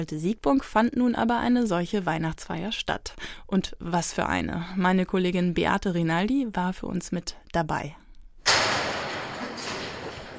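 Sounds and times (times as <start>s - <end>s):
speech: 0.0s - 8.0s
heavy metal prison door slamming shut: 8.4s - 10.3s.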